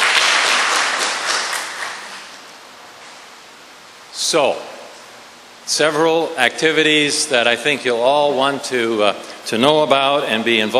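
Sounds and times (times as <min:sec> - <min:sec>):
audience applause: 0:00.0 - 0:02.2
speech: 0:04.3 - 0:04.7, 0:05.7 - 0:10.7.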